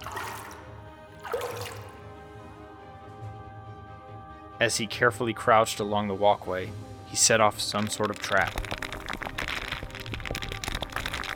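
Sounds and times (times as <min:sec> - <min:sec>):
water trickling and dripping in a cave: 0:00.0 - 0:02.1, 0:07.2 - 0:11.3
speech: 0:04.6 - 0:08.8.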